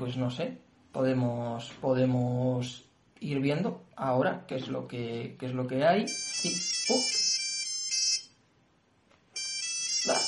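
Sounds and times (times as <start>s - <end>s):
speech: 0.0s - 7.2s
electronic phone ringtone for an incoming call: 6.1s - 8.4s, 9.4s - 10.2s.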